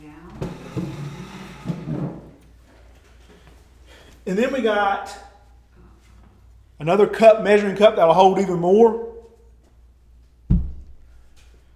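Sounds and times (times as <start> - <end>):
chair shifted across the floor with scraping bumps and knocks: 0.2 - 3.7
speech: 4.3 - 5.3, 6.8 - 9.1.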